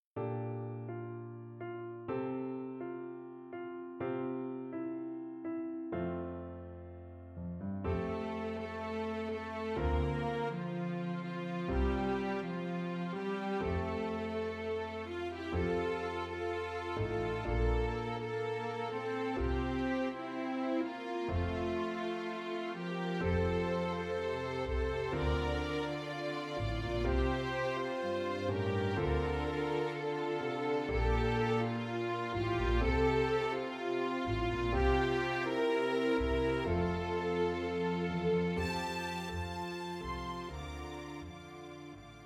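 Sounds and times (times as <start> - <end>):
piano accompaniment: 0.2 - 42.2
string orchestra or quintet: 7.9 - 42.2.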